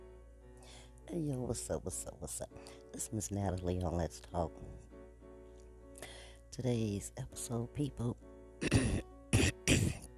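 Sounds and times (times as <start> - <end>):
speech: 1.1 - 4.9, 6.6 - 8.8
person clearing throat: 8.6 - 10.1.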